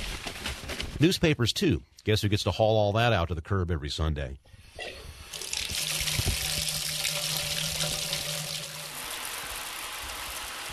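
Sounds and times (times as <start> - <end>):
speech: 1.0 - 5.0
hot water from a tankless water heater gushing from a tap into a sink: 5.2 - 10.7.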